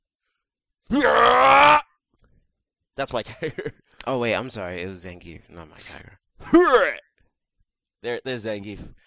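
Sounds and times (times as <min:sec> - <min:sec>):
man imitating a fighting-game character's throw grunt: 0:00.9 - 0:01.8, 0:06.5 - 0:07.0
speech: 0:03.0 - 0:07.0, 0:08.0 - 0:09.0
laughter: 0:03.2 - 0:03.7.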